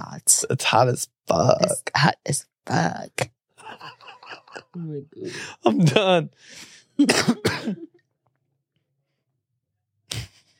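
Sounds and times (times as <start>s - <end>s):
speech: 0.3s - 4.0s, 4.6s - 7.9s
laughter: 3.6s - 6.1s
person coughing: 7.0s - 8.0s.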